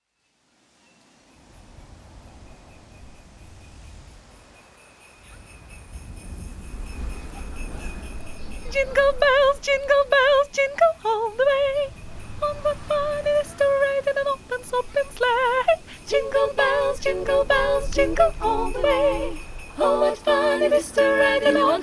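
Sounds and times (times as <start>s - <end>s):
soprano singing a Christmas song: 8.5s - 21.8s.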